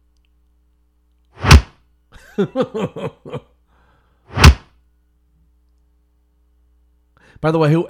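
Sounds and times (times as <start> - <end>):
fist punching a raw pork butt: 1.4 - 1.8, 4.4 - 4.7
speech: 2.4 - 3.5, 7.4 - 7.8.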